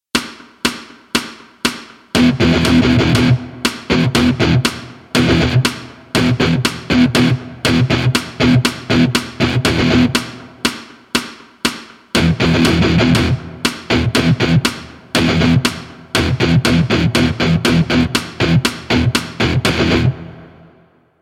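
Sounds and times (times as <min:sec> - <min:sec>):
guitar riffs using just one note: 0:02.2 - 0:10.3, 0:12.2 - 0:20.4.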